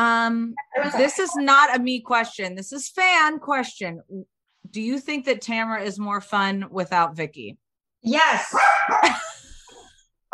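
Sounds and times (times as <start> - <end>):
speech: 0.0 - 9.4
chihuahua barking: 8.5 - 9.1.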